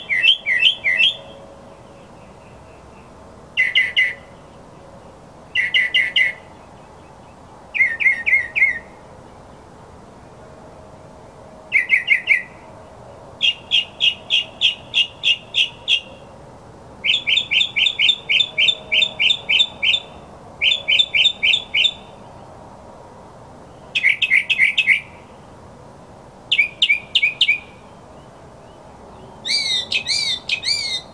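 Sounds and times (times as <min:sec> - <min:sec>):
mockingbird singing: 0:00.0 - 0:04.6, 0:05.5 - 0:09.7, 0:11.7 - 0:12.6, 0:13.4 - 0:16.3, 0:17.0 - 0:22.5, 0:23.7 - 0:25.2, 0:26.5 - 0:31.1.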